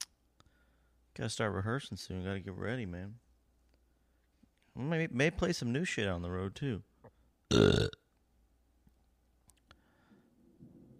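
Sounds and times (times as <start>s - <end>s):
speech: 1.2s - 3.2s, 4.8s - 8.0s
loud deep burp: 7.5s - 8.0s.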